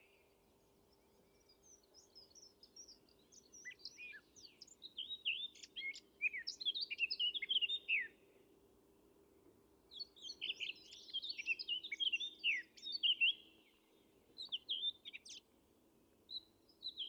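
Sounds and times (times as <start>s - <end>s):
Eurasian blackcap warbling song: 1.4s - 8.2s, 9.9s - 15.5s, 16.3s - 17.0s.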